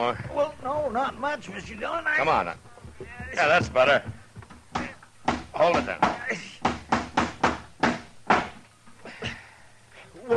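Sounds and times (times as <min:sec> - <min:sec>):
speech: 0:00.0 - 0:04.2, 0:05.6 - 0:06.5
hammer striking a nail into a rotten dry wooden door: 0:04.7 - 0:08.6.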